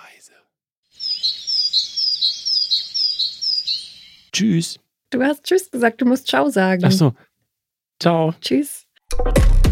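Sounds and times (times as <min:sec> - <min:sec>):
great tit singing bright two-note phrases: 0:00.9 - 0:04.4
speech: 0:04.4 - 0:07.3, 0:08.0 - 0:09.6.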